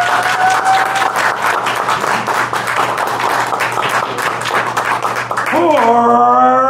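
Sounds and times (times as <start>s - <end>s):
audience clapping to vote for a contestant: 0.0s - 6.4s
audience cheering: 0.0s - 6.6s.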